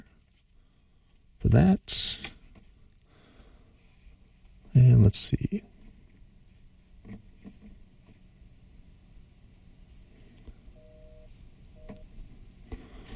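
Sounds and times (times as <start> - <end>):
speech: 1.5 - 2.1
faint dual-pitched telephone dialing tones: 10.8 - 12.1
scattered clicks on telephone line: 11.8 - 12.1.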